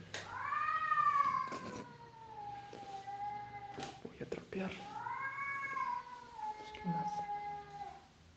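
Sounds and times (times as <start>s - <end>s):
cat yowling meow: 0.3s - 3.9s, 5.0s - 8.0s
speech: 4.5s - 4.9s.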